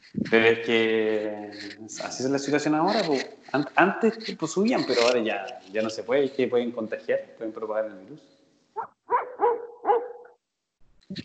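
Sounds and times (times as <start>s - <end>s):
speech: 0.1s - 9.0s
dogs barking: 8.8s - 10.3s.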